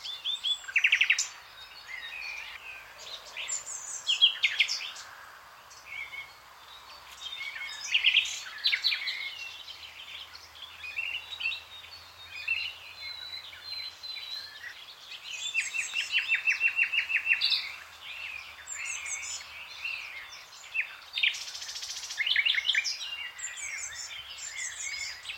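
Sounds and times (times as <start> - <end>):
Common nightingale song with whistled and chirping phrases: 0.0 - 25.3.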